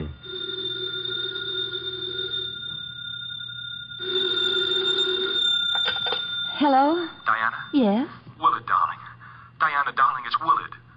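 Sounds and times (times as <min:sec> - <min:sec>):
telephone bell ringing with sustained jangling: 0:00.1 - 0:08.0
speech: 0:06.6 - 0:08.8, 0:09.7 - 0:10.8.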